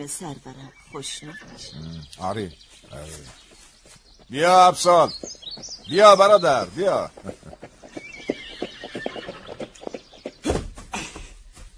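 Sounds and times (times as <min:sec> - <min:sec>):
speech: 0:00.0 - 0:03.5, 0:04.3 - 0:07.4
horse hooves clip-clopping: 0:00.0 - 0:11.7
unruly horse neighing and whinnying: 0:01.0 - 0:02.2, 0:05.9 - 0:10.4.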